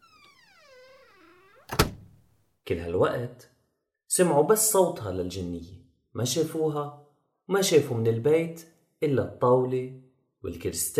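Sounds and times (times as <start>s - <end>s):
house door creaking on its hinges: 0.0s - 2.3s
speech: 2.7s - 3.5s, 4.1s - 10.9s.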